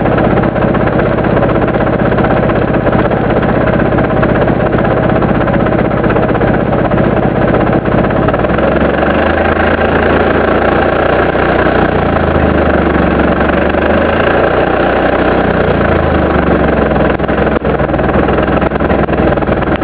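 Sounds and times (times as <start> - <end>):
Holder single-axle tractor idling: 0.0 - 19.8.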